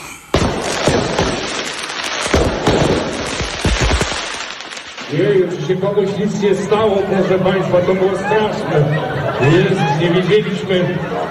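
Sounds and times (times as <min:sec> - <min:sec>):
fireworks exploding indoors in a large room: 0:00.3 - 0:05.8
laughter: 0:05.1 - 0:11.2
speech: 0:05.1 - 0:11.2.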